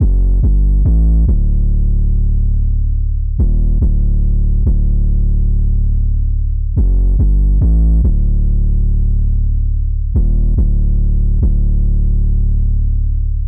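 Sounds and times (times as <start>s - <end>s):
808 bass in G minor: 0.0s - 13.4s.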